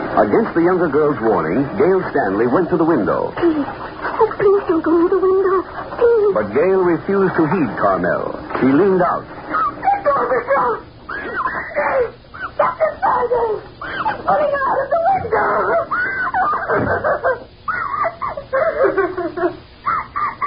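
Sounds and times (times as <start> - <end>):
speech: 0.2 - 9.4
laughter: 0.3 - 8.0, 8.9 - 20.4
woman screaming and wailing: 9.6 - 18.9.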